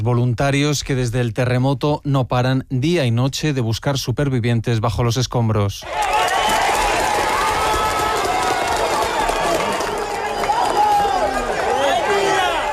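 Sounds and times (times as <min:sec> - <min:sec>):
speech: 0:00.0 - 0:06.4
large crowd cheering and clapping: 0:05.8 - 0:12.7
many voices shouting over one another: 0:05.8 - 0:12.7.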